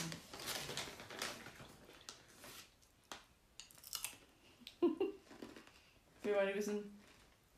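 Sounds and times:
crinkly rustling of a packet: 0.0s - 3.3s
crunchy chewing of original caramel popcorn: 3.6s - 4.3s
speech: 6.3s - 7.0s.

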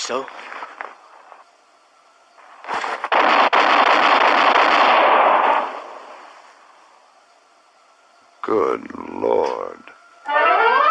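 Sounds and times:
speech: 0.1s - 0.6s, 8.5s - 9.8s
gunshots during target practice: 3.0s - 6.1s.

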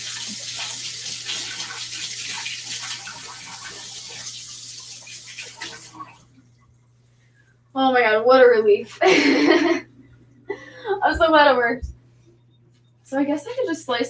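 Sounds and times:
water from a running kitchen tap rushing over hands: 0.0s - 6.4s
speech: 7.8s - 9.9s, 11.2s - 11.9s, 13.1s - 14.0s
laughter: 9.0s - 9.9s.

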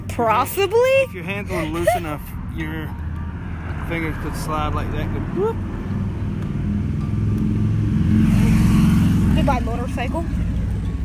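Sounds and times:
speech: 0.2s - 3.0s, 3.9s - 6.0s, 9.5s - 10.5s
motorcycle engine rumble passing by: 3.8s - 11.0s.

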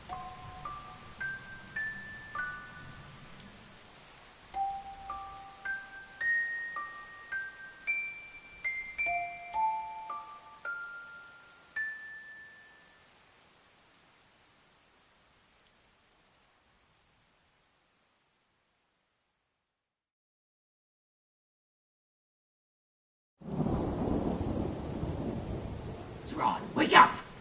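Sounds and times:
heavy rain downpour: 0.0s - 19.6s, 23.4s - 27.3s
wound-up music box playing a slow rising melody: 0.1s - 2.9s, 4.6s - 12.9s
low rumble suggesting thunder: 23.4s - 27.3s.

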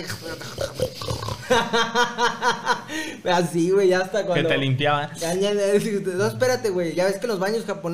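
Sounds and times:
person imitating pig snorting and grunting: 0.0s - 1.5s
laughter: 0.0s - 3.0s
speech: 0.0s - 7.9s.

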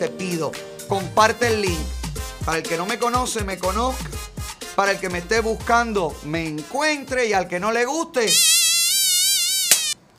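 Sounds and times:
speech: 0.0s - 4.2s, 4.8s - 8.5s
fly buzzing: 8.3s - 10.0s.

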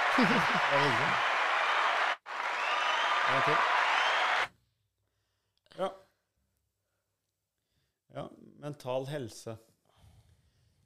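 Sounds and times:
laughter: 0.0s - 1.6s
dense applause from a sizable crowd: 0.0s - 4.5s
speech: 0.2s - 1.3s, 3.3s - 3.7s, 5.8s - 6.0s, 8.2s - 9.7s.

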